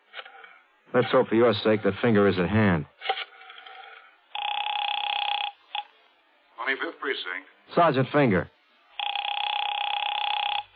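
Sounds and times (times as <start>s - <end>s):
speech: 0.9s - 3.0s, 6.7s - 8.6s
telephone ringback tone over the line: 4.3s - 5.9s, 9.0s - 10.7s.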